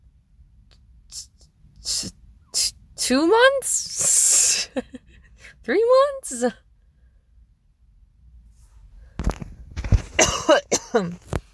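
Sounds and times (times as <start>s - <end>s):
speech: 3.1s - 6.6s, 10.5s - 11.3s
harsh hoarse coughing: 10.2s - 11.2s.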